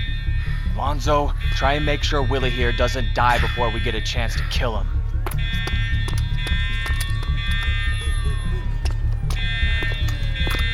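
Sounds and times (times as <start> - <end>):
deep rumbling hum: 0.0 - 10.7
electronic alarm ringing: 0.0 - 10.7
speech: 0.8 - 5.0.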